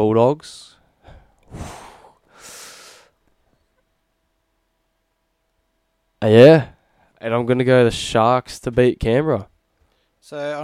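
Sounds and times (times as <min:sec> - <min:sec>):
speech: 0:00.0 - 0:00.8, 0:06.2 - 0:09.5, 0:10.3 - 0:10.6
heavy nervous breathing: 0:01.0 - 0:03.2.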